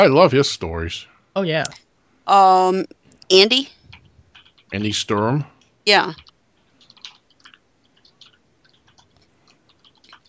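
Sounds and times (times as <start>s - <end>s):
speech: 0.0s - 3.8s, 4.7s - 6.2s
typing on a keyboard: 3.9s - 5.0s, 6.0s - 10.2s.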